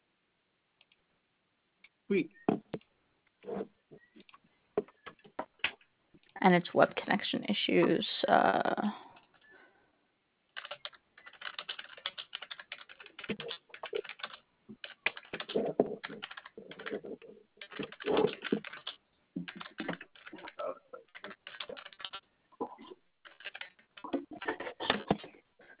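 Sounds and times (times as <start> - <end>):
speech: 2.1 - 2.7, 6.4 - 9.0
rapid typing on a computer keyboard over a phone-like line: 10.6 - 22.2, 23.2 - 25.2.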